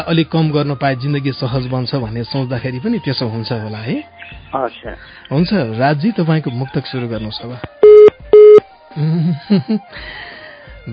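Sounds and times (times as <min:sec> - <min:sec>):
speech: 0:00.0 - 0:07.8, 0:09.0 - 0:10.9
telephone busy tone beeps after a dropped call: 0:07.8 - 0:08.6.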